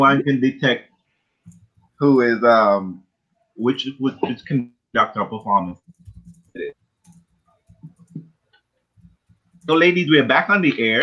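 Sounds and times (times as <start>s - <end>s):
speech: 0.0s - 0.9s, 2.0s - 3.0s, 3.6s - 5.9s, 6.6s - 6.8s, 9.6s - 11.0s
typing on a computer keyboard: 5.8s - 8.3s.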